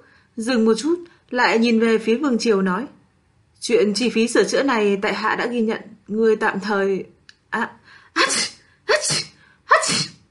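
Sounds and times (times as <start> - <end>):
speech: 0.4 - 3.0, 3.6 - 8.4
person sneezing outside a door: 8.2 - 10.2.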